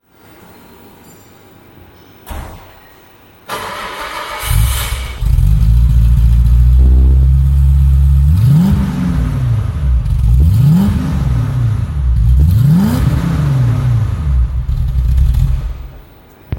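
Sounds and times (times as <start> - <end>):
Mercedes Benz 107 car: 3.5 - 16.2.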